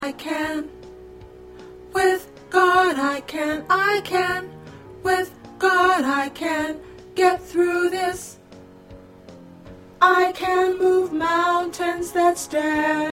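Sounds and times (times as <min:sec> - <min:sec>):
tenor singing gospel songs: 0:00.0 - 0:00.7, 0:01.9 - 0:08.4, 0:10.0 - 0:13.1.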